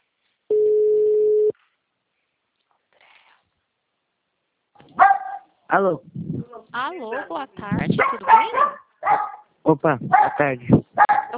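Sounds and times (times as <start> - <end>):
telephone ringing tone on an outgoing call: 0.5 - 1.5
speech: 5.7 - 11.3.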